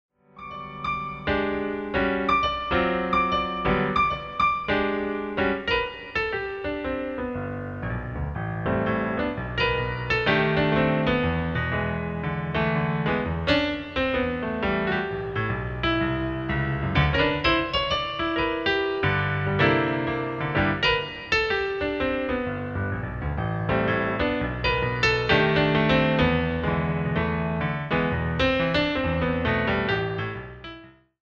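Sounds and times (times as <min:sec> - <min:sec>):
swing piano solo: 0:00.3 - 0:31.2.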